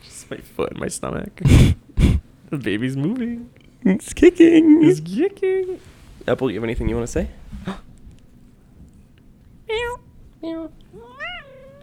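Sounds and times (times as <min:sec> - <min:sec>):
faint hum: 0:00.0 - 0:11.8
speech: 0:00.3 - 0:01.8, 0:02.5 - 0:07.9
cat meowing: 0:09.7 - 0:11.8.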